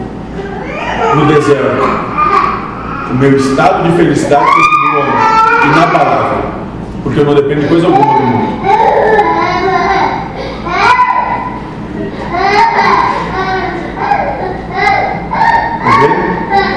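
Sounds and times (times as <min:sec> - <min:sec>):
young child crying loudly: 0:00.4 - 0:03.2, 0:04.3 - 0:06.2, 0:07.8 - 0:11.6, 0:12.2 - 0:16.7
speech: 0:01.2 - 0:02.1, 0:03.1 - 0:04.8, 0:05.6 - 0:06.3, 0:07.0 - 0:08.4.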